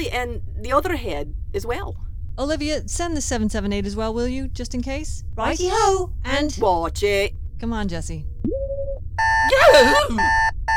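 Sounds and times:
speech: 0.0s - 8.7s, 9.5s - 10.5s
wristwatch alarm beeping: 9.2s - 10.7s.

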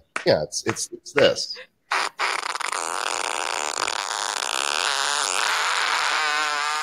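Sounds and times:
speech: 0.2s - 1.7s
fart sound effect from phone app: 1.9s - 6.8s.

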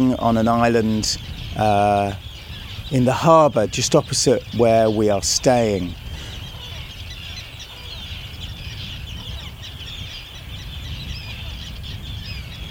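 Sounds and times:
speech: 0.0s - 2.3s, 2.9s - 6.3s
colony of common and Arctic terns calling on a harbour island: 0.0s - 12.6s.

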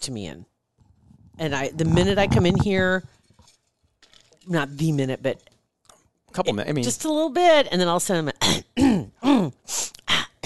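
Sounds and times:
speech: 0.0s - 0.5s, 1.4s - 3.2s, 4.5s - 5.5s, 6.3s - 10.0s
person clearing throat: 8.4s - 10.4s.

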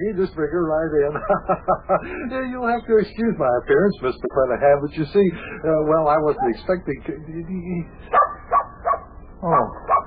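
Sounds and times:
speech: 0.0s - 8.3s, 9.4s - 9.9s
laughter: 0.8s - 3.0s
dog barking: 6.4s - 6.7s, 8.1s - 10.0s.

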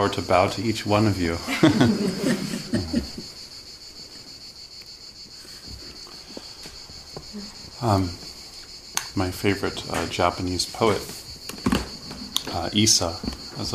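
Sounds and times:
speech: 0.0s - 2.4s, 7.8s - 8.2s, 9.2s - 11.2s, 12.6s - 13.7s
crickets chirping: 0.0s - 13.7s
laughter: 1.3s - 3.3s.

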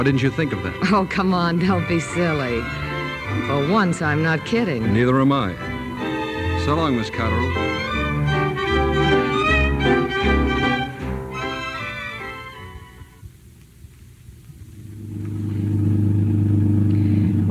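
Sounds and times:
speech: 0.0s - 5.7s, 6.6s - 8.0s
orchestral music: 0.0s - 13.2s
car engine running while driving: 14.8s - 17.4s.

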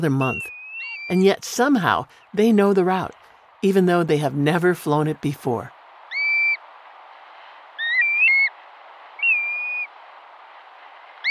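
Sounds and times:
speech: 0.0s - 0.5s, 1.1s - 5.8s
windy hiss: 0.0s - 11.3s
black-bellied plover whistled call: 0.1s - 1.1s, 6.1s - 6.6s, 7.8s - 8.5s, 9.2s - 9.9s.

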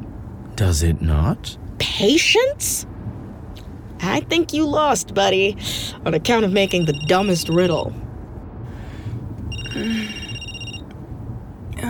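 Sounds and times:
low rumbling background: 0.0s - 11.8s
speech: 0.6s - 2.9s, 4.0s - 8.0s, 9.8s - 10.2s
telephone ringing with a bright electronic tone: 6.6s - 7.9s, 9.5s - 10.9s.

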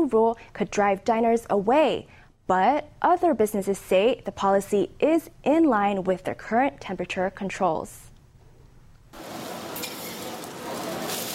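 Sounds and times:
speech: 0.0s - 8.1s
meal sizzling on a hot griddle in a Taiwanese restaurant kitchen: 9.2s - 11.3s.

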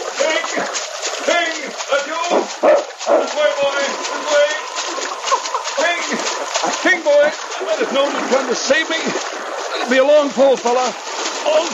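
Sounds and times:
river water splashing and churning in a swift current: 0.0s - 11.7s
dog barking and yelping while swimming in a river: 2.6s - 3.3s
laughter: 3.2s - 10.7s
speech: 7.8s - 11.7s.

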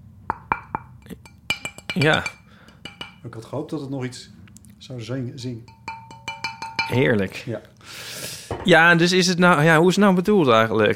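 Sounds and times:
someone tapping a ceramic wall tile: 0.3s - 3.2s, 5.7s - 7.1s
speech: 2.0s - 2.4s, 3.2s - 5.8s, 6.9s - 8.0s, 8.6s - 10.9s.

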